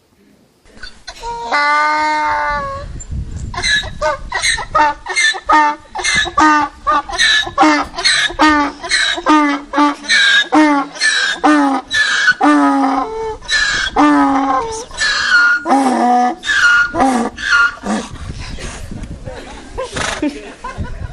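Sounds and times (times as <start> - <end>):
donkey braying: 0.8 - 2.9, 3.5 - 18.2
speech: 1.5 - 2.1, 4.8 - 9.6
laughter: 18.6 - 21.1.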